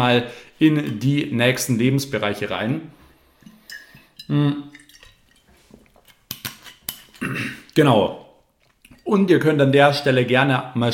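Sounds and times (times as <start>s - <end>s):
speech: 0.0s - 3.0s, 4.3s - 4.8s, 7.2s - 8.2s, 9.1s - 10.9s
glass handled: 3.4s - 7.3s
glass clinking as set down: 3.5s - 5.5s.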